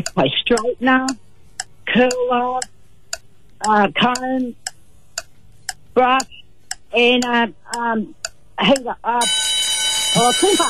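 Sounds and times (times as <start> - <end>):
excited talk: 0.0 - 1.2, 1.9 - 2.6, 3.6 - 4.6, 6.0 - 9.3, 10.2 - 10.6
speech: 0.0 - 1.2, 2.0 - 2.7, 3.6 - 4.6, 6.0 - 9.5, 10.1 - 10.6
game show buzzer: 9.2 - 10.6.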